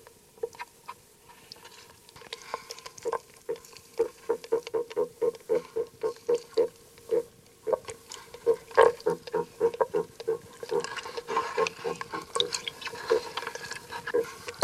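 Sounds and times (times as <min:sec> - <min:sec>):
Common frog grunting and croaking: 0:03.0 - 0:13.4.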